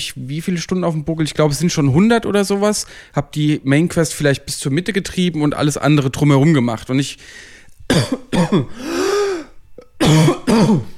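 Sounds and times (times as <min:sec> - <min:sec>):
speech: 0:00.0 - 0:09.3, 0:10.0 - 0:10.9
person in a coughing fit: 0:07.9 - 0:10.9
throat clearing: 0:09.8 - 0:10.9.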